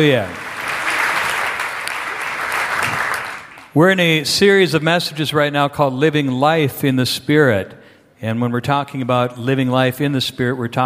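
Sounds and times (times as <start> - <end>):
speech: 0.0 - 0.4, 3.7 - 10.8
church congregation clapping in praise during a morning service: 0.0 - 3.8.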